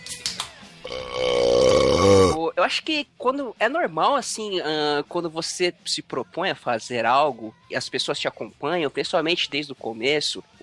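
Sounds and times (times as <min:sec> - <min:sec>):
long loud burp with a rough croaking tone: 0:00.8 - 0:02.4
speech: 0:02.7 - 0:10.6.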